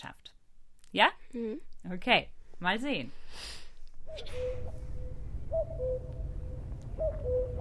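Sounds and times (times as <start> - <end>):
speech: 0.9 - 4.8
common cuckoo calling: 4.0 - 7.5
low continuous rumble: 4.0 - 7.5.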